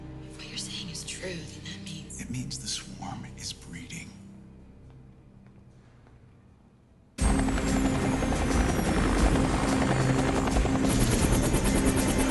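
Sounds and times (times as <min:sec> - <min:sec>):
speech: 0:01.2 - 0:01.6, 0:02.3 - 0:04.2
two military helicopters touching down on a remote airfield, rotors and engines roaring: 0:07.2 - 0:12.2.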